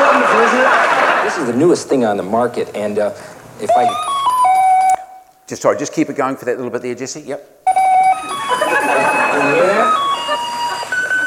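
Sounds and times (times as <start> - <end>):
laughter: 0.0 - 1.6, 8.2 - 11.2
speech: 1.5 - 4.1, 5.5 - 7.8, 8.7 - 10.0
bell ringing: 3.7 - 5.2, 7.7 - 11.2.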